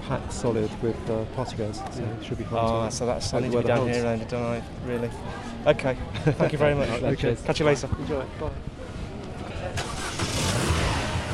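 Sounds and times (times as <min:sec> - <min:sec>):
speech: 0:00.1 - 0:08.7
car engine starting: 0:09.8 - 0:11.3.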